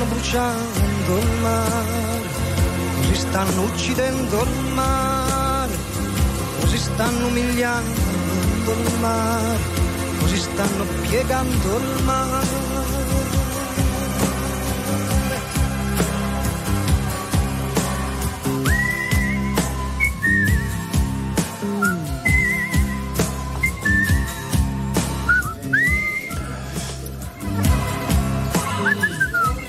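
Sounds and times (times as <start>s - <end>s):
song with steady instrumental backing: 0.0s - 29.6s
speech: 0.3s - 2.4s, 3.0s - 5.4s, 6.7s - 8.1s, 8.7s - 13.4s
person whistling a tune over a song: 18.4s - 26.6s, 28.6s - 29.6s.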